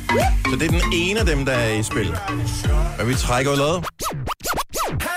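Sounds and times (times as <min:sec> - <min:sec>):
speech: 0:00.2 - 0:03.9
DJ scratching a record: 0:03.3 - 0:05.1.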